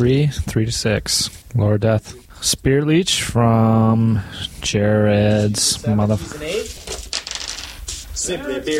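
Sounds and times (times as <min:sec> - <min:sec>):
speech: 0:00.0 - 0:06.9, 0:08.2 - 0:08.7
small hard objects clattering across a surface: 0:06.8 - 0:08.0.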